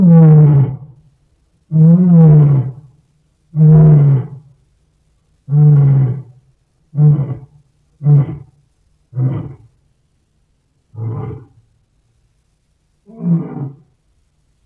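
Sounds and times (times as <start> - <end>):
lion roaring bout: 0.0 - 0.9, 1.7 - 2.9, 3.6 - 4.5, 5.5 - 6.4, 7.0 - 8.5, 9.1 - 9.7, 11.0 - 11.6, 13.1 - 13.9.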